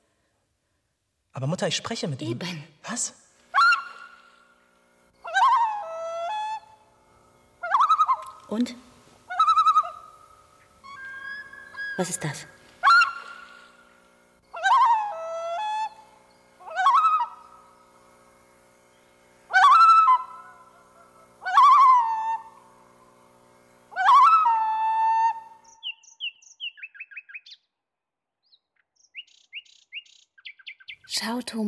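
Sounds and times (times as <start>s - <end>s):
speech: 1.4s - 3.2s, 8.5s - 8.9s, 12.0s - 12.6s, 31.5s - 31.6s
bird calling: 3.5s - 4.4s, 5.2s - 6.9s, 7.6s - 18.0s, 18.9s - 23.0s, 23.8s - 27.6s.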